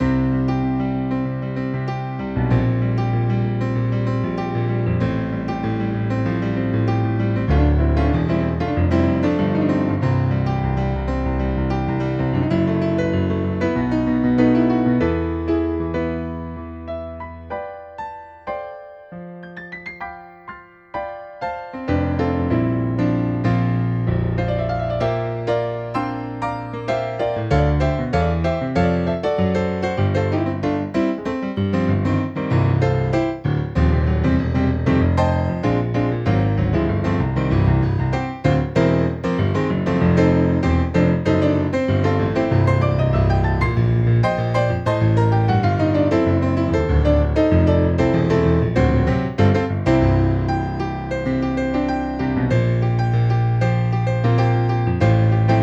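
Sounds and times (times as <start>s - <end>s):
digital piano grand piano demo song: 0.0s - 55.6s.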